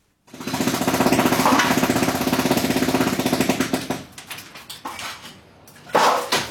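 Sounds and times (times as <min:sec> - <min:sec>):
jackhammer pounding while demolishing a house: 0:00.2 - 0:04.2.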